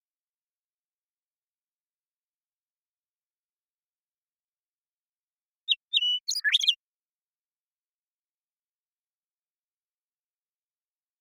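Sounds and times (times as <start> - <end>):
Western meadowlark Sturnella neglecta singing in Washington, United States: 5.6 - 6.9.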